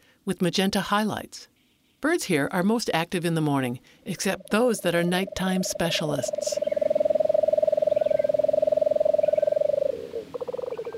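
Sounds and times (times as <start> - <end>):
speech: 0.2 - 6.7
lesser nighthawk purring trill: 4.2 - 10.9.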